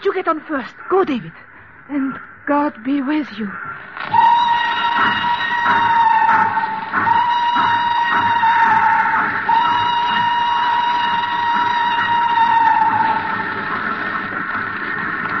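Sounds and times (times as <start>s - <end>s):
train rolling along rails: 0.0s - 15.3s
speech: 0.2s - 4.2s
whistle-like metallic tone: 4.1s - 14.2s.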